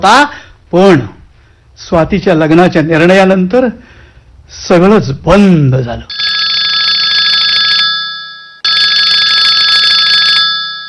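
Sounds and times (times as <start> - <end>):
speech: 0.0 - 1.1, 1.8 - 6.3
telephone ringing: 6.1 - 10.8.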